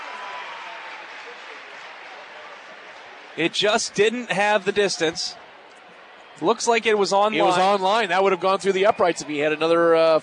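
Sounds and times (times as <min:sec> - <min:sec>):
crowd of football fans applauding: 0:00.0 - 0:05.4
speech: 0:03.4 - 0:05.4, 0:06.4 - 0:10.2.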